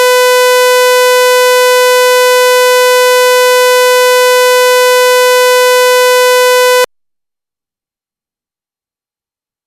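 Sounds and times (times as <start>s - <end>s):
500 Hz sawtooth tone: 0.2s - 6.9s.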